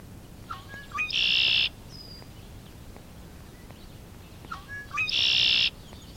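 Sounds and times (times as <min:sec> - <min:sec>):
soft outdoor background: 0:00.0 - 0:06.1
red-winged blackbird singing: 0:00.4 - 0:02.5, 0:03.5 - 0:06.1.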